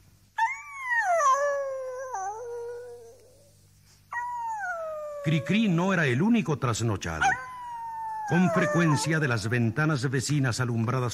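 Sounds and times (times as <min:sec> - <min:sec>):
dog howling plaintively at night: 0:00.4 - 0:03.5, 0:04.1 - 0:05.8, 0:07.2 - 0:09.4
speech: 0:05.2 - 0:07.4, 0:08.3 - 0:11.1.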